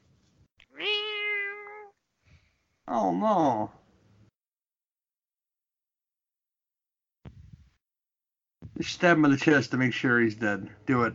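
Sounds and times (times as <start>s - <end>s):
cat yowling in heat: 0.7s - 2.0s
speech: 2.9s - 3.8s, 8.8s - 11.1s.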